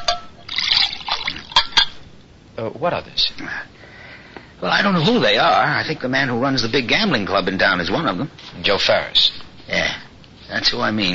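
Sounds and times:
water pouring into a glass: 0.4 - 1.8
speech: 2.6 - 3.8, 4.6 - 11.1.

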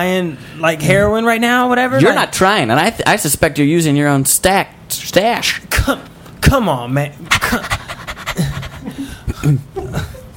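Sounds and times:
speech: 0.0 - 7.8, 9.4 - 9.8
dog panting: 7.3 - 9.1.

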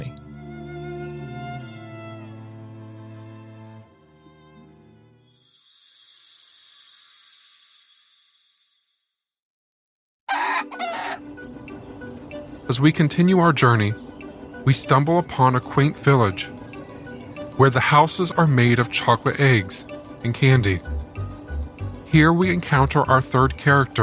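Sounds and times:
rooster crowing loudly: 10.3 - 11.3
chickens clucking and squawking harshly: 10.3 - 12.0
speech: 12.7 - 14.0, 14.6 - 16.6, 17.6 - 21.0, 22.1 - 24.0.

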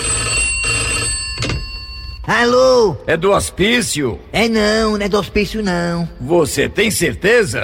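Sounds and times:
old-style telephone bell ringing: 0.0 - 2.3
speech: 2.3 - 7.6.

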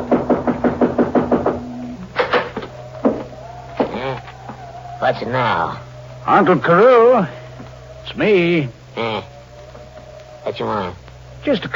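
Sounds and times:
knocking on a wooden door: 0.0 - 4.0
faint low hum: 0.0 - 11.7
speech: 5.0 - 7.4, 8.1 - 9.3, 10.4 - 11.7.

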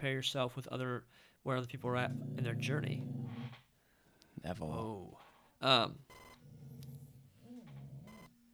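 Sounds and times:
speech: 0.0 - 3.6, 4.4 - 6.2
shrill electronic beep from a dog shock collar: 6.1 - 6.4, 8.1 - 8.3.

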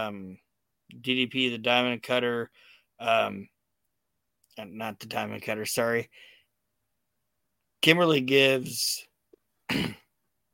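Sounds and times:
speech: 0.0 - 3.6, 4.6 - 6.3, 7.8 - 9.1, 9.7 - 10.0
small cough: 9.7 - 10.2.

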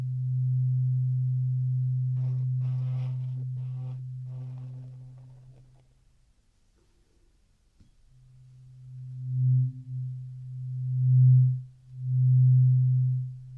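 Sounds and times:
steady low hum: 0.0 - 13.5
light scratchy rustles of an ear cleaning tool: 2.2 - 5.9.

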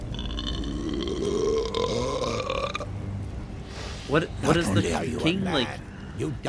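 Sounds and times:
man burping loudly: 0.1 - 2.9
speech: 4.1 - 6.4.

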